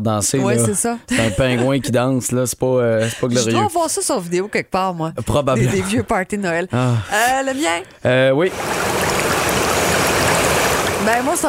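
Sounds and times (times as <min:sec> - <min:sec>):
speech: 0:00.0 - 0:09.4, 0:11.1 - 0:11.4
laughter: 0:00.6 - 0:02.0, 0:05.2 - 0:06.2
water trickling from melting snow: 0:08.5 - 0:11.4.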